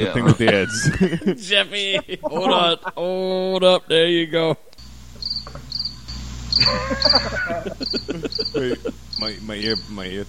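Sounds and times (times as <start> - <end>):
laughter: 0.0 - 3.6, 6.6 - 9.8
speech: 0.0 - 4.6, 6.6 - 10.2
faint low hum: 0.0 - 10.2
crickets chirping: 4.8 - 10.2.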